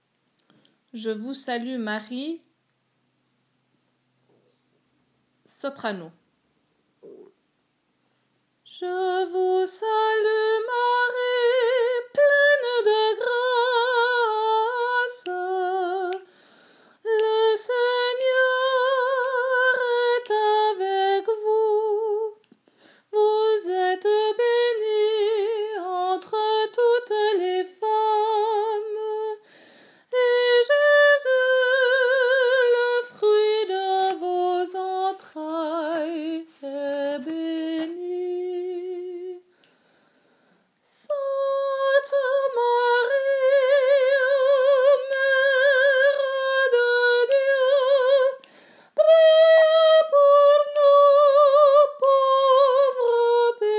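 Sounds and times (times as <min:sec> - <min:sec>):
soprano singing a sacred song in French: 0:08.6 - 0:16.3, 0:17.0 - 0:22.5, 0:23.1 - 0:29.4, 0:30.1 - 0:39.5, 0:40.9 - 0:53.7.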